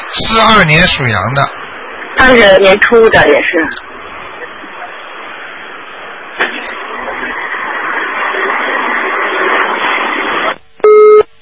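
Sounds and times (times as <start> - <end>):
steady telephone line hiss: 0.0 - 11.4
speech: 0.2 - 1.6, 2.2 - 3.9
loud harsh telephone busy tone as the call goes dead: 10.8 - 11.3.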